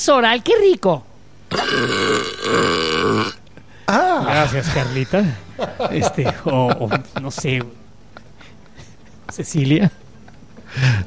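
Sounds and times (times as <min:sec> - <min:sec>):
speech: 0:00.0 - 0:07.8, 0:09.3 - 0:10.0
long loud burp: 0:01.5 - 0:03.4
laughter: 0:03.9 - 0:11.0.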